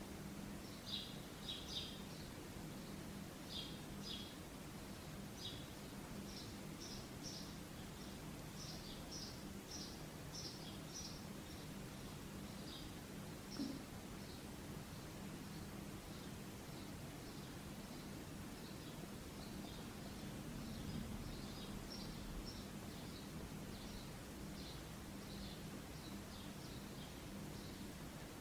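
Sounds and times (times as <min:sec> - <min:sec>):
soft hiss: 0:00.0 - 0:28.4
birds chirping and twittering: 0:05.4 - 0:28.4.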